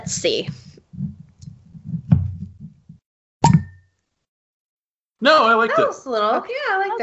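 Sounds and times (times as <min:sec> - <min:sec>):
speech: 0:00.0 - 0:00.6, 0:05.2 - 0:07.0
sharp wine cork pop: 0:03.4 - 0:03.9.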